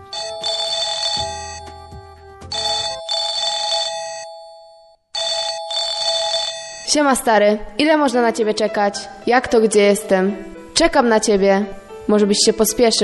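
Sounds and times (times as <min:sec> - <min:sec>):
electronic telephone ringing with warbling tones: 0:00.0 - 0:07.1
speech: 0:06.9 - 0:13.0.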